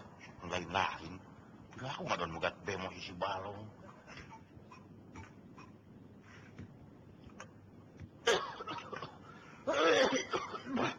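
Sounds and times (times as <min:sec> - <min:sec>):
speech: 0:00.7 - 0:01.2, 0:01.8 - 0:04.2
person coughing: 0:08.2 - 0:10.9.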